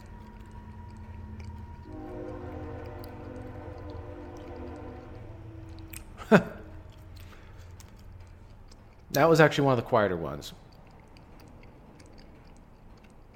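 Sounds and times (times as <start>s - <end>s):
sustained train horn blast: 0.0s - 7.6s
train rumbling past: 0.0s - 13.3s
speech: 6.3s - 6.5s, 9.2s - 10.6s.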